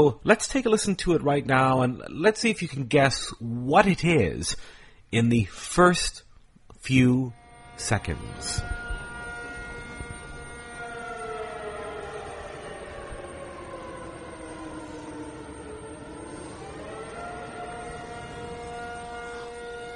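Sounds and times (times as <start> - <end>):
speech: 0.0 - 6.2, 6.8 - 8.8
civil defense air raid siren wailing during a city drill in Taipei: 7.3 - 19.9.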